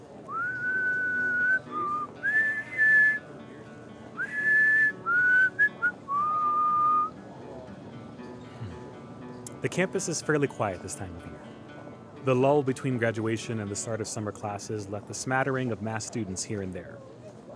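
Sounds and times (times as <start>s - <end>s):
soft instrumental backing: 0.0s - 16.8s
whistled melody from a pop song: 0.3s - 3.3s, 4.2s - 7.2s
speech: 9.6s - 11.6s, 12.2s - 17.2s.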